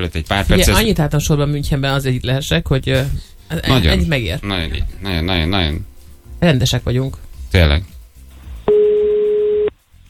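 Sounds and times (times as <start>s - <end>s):
speech: 0.0s - 8.0s
telephone ringback tone beep: 8.7s - 9.7s.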